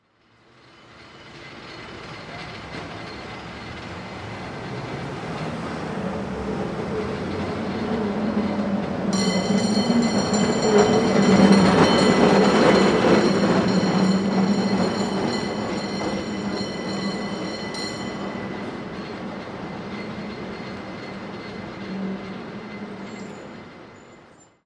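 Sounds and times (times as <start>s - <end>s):
cable car: 0.1s - 24.6s.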